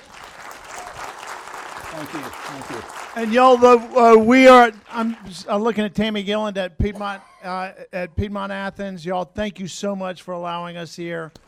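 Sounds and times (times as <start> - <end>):
audience applause: 0.0 - 5.6
speech: 1.9 - 11.4.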